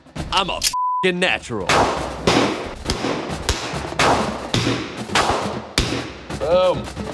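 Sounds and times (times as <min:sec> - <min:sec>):
speech: 0:00.3 - 0:02.0, 0:06.5 - 0:07.0
handgun being fired: 0:01.7 - 0:06.2.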